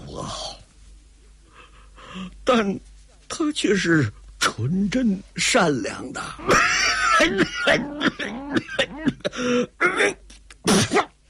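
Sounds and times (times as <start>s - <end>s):
speech: 0.2s - 0.6s, 2.2s - 11.1s
throat-clearing bursts: 6.4s - 11.2s
old man in a rasping coughing fit: 6.5s - 11.2s
old man spitting up phlegm: 6.5s - 11.2s.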